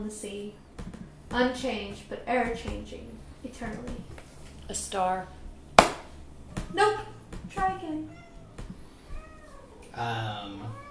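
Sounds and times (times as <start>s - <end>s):
speech: 0.0s - 0.7s, 1.3s - 5.4s, 6.7s - 8.2s, 10.0s - 10.8s
person imitating a cat with a drawn-out mid-pitched meowing cry: 9.2s - 10.8s.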